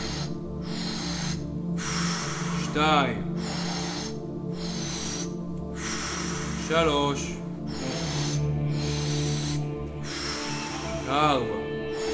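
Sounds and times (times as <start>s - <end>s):
constant low humming drone: 0.0s - 12.1s
deep forceful breaths through the mouth in breathing exercise: 0.0s - 12.1s
speech: 2.8s - 3.5s, 6.7s - 7.4s, 11.1s - 11.6s.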